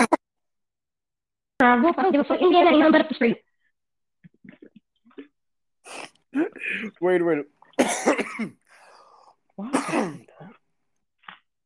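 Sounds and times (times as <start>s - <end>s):
speech: 1.6s - 3.4s, 5.9s - 8.6s, 9.6s - 10.5s
person coughing while smoking: 5.9s - 7.0s, 7.8s - 8.7s, 9.7s - 10.4s
raspy breath: 8.6s - 9.5s.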